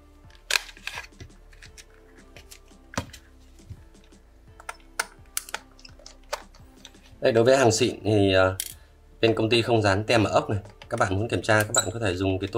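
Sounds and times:
device casing clicking and snapping as it is opened: 0:00.2 - 0:03.2, 0:04.6 - 0:07.0
speech: 0:07.2 - 0:08.6, 0:09.2 - 0:12.5.

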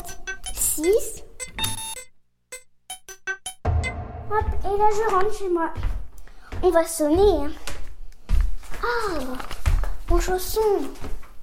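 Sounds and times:
electronic door entry keypad beeping as an entry code is typed: 0:00.0 - 0:03.6
speech: 0:00.8 - 0:01.3, 0:04.3 - 0:05.9, 0:06.6 - 0:07.6, 0:08.8 - 0:09.5, 0:10.1 - 0:11.1.

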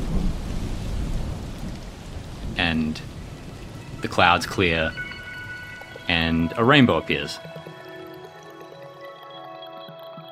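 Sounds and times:
thunder rumbling in a thunderstorm: 0:00.0 - 0:07.8
heavy rain in a thunderstorm: 0:00.0 - 0:08.8
speech: 0:02.7 - 0:03.2, 0:04.0 - 0:05.0, 0:06.1 - 0:07.5.

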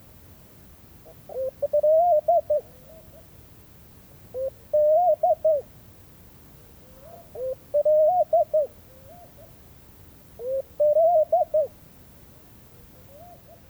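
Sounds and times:
Laughing dove Streptopelia senegalensis male cooing at dawn in a Mauritanian oasis: 0:01.3 - 0:03.2, 0:04.4 - 0:05.7, 0:06.8 - 0:09.5, 0:10.4 - 0:11.8.

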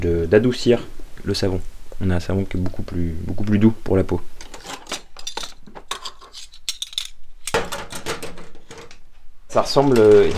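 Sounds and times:
speech: 0:00.0 - 0:04.4, 0:09.5 - 0:10.3
saucepan and utensils clinking while weighing soap ingredients: 0:04.4 - 0:08.9.

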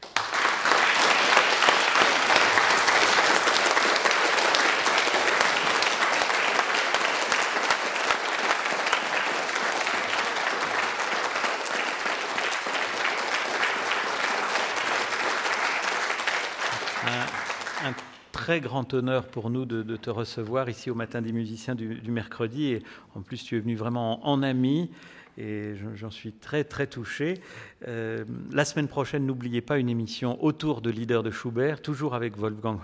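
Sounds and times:
audience applause: 0:00.0 - 0:18.2
speech: 0:18.5 - 0:32.8.

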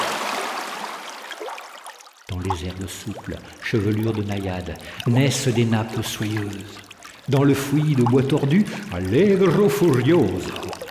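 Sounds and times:
shallow stream water babbling over icy pebbles: 0:00.0 - 0:10.9
speech: 0:02.3 - 0:10.7.

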